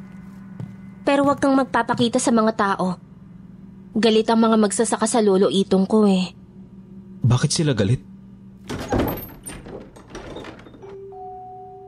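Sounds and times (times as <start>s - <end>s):
speech: 1.1s - 3.1s, 3.9s - 6.4s, 7.3s - 8.1s
bedroom door bursting open with a thud and rattle: 8.6s - 11.0s
knocks and clatters: 8.7s - 11.0s.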